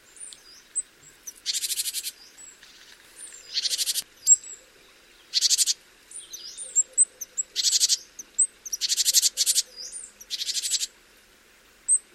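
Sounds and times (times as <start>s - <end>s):
great tit churring calls: 1.2s - 2.2s, 3.5s - 4.4s, 5.3s - 10.9s.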